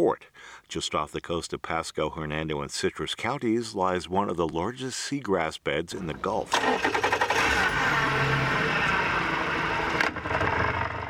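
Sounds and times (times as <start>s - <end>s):
speech: 0.0s - 8.6s
small outboard boat motor puttering and revving: 6.5s - 11.0s.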